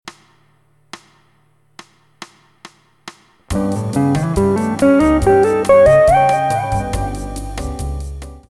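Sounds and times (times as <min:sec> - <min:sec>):
lydian melodic patterns: 0:03.5 - 0:07.7.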